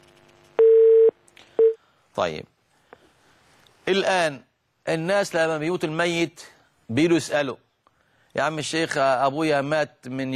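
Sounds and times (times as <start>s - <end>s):
telephone call tone: 0.6s - 1.8s
speech: 2.2s - 2.5s, 3.9s - 7.6s, 8.4s - 10.3s.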